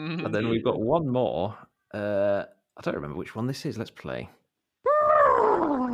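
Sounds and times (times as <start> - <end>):
speech: 0.0 - 4.4
person imitating a horse: 4.8 - 5.9.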